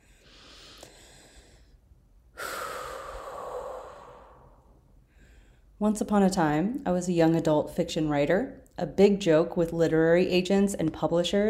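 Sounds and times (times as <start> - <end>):
person breathing deeply: 0.0 - 5.8
speech: 5.8 - 11.4.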